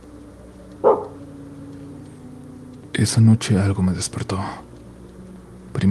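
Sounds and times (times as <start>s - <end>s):
speech: 0.8s - 1.1s, 3.0s - 4.7s
dog giving a short sharp bark: 0.8s - 1.2s.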